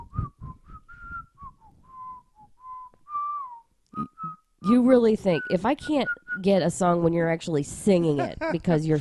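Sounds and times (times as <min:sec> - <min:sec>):
person whistling a song melody: 0:00.0 - 0:04.4
speech: 0:04.6 - 0:08.9.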